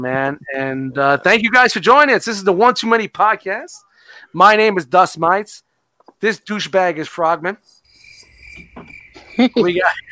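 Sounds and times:
speech: 0.0 - 7.8, 9.4 - 10.1
crickets chirping: 7.6 - 10.1.

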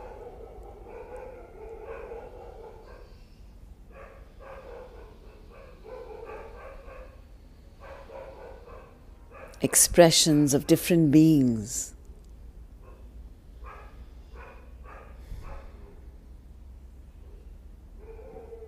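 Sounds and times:
several dogs barking and yapping: 0.0 - 3.2, 3.9 - 7.2, 7.8 - 9.7, 12.8 - 16.0, 18.0 - 18.6
speech: 9.6 - 11.9.

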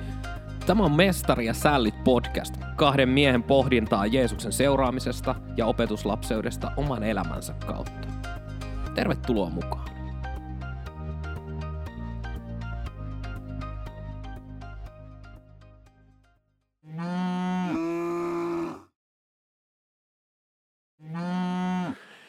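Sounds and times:
speech: 0.7 - 8.0, 9.0 - 9.9
cattle mooing: 16.9 - 18.7, 21.0 - 22.0.

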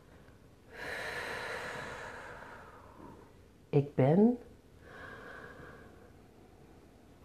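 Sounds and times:
deep breath drawn close to the microphone: 0.7 - 3.3, 4.8 - 6.3
speech: 3.8 - 4.5.

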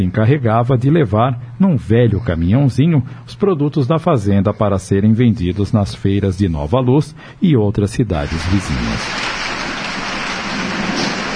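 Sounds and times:
speech: 0.0 - 9.6
heavy rain drumming on surfaces: 9.0 - 11.3.

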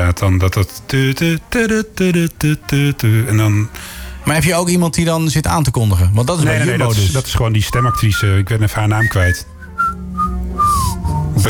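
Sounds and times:
speech: 0.1 - 10.0
person whistling a short melody: 7.7 - 11.4.

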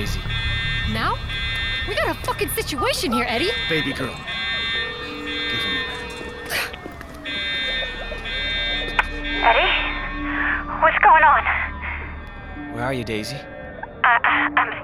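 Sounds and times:
speech: 0.0 - 4.4, 9.5 - 9.8, 12.8 - 13.5
electronic alarm ringing: 0.0 - 14.8
laughter: 1.9 - 4.3, 5.5 - 9.8.

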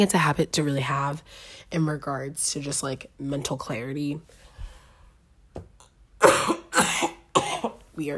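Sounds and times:
speech: 0.0 - 4.4, 8.0 - 8.1
person coughing: 6.2 - 7.8.

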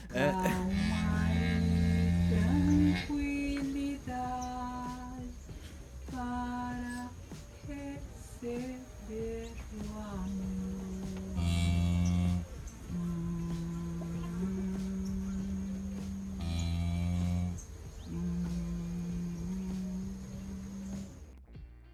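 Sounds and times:
woman singing long notes in a stable: 0.0 - 21.2
speech: 0.1 - 0.5
cow mooing in a stable: 0.1 - 3.2, 10.4 - 21.2.

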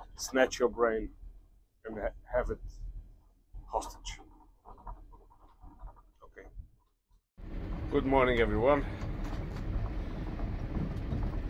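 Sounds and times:
speech: 0.2 - 1.2, 1.9 - 2.8, 3.7 - 4.2, 7.9 - 9.0
moving train carriage interior rumbling: 7.4 - 11.4.

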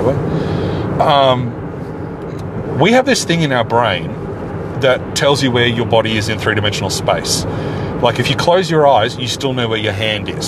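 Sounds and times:
speech: 0.0 - 1.6, 2.3 - 4.2, 4.8 - 10.4
car cruising on a freeway: 0.0 - 10.4.

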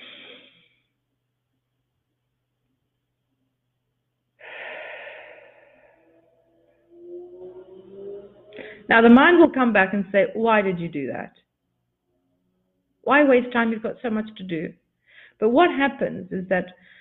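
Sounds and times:
deep breathing from the diaphragm: 0.0 - 0.9, 4.4 - 8.9, 14.9 - 15.4, 16.8 - 16.9
speech: 8.9 - 11.4, 13.1 - 14.8, 15.4 - 16.9.

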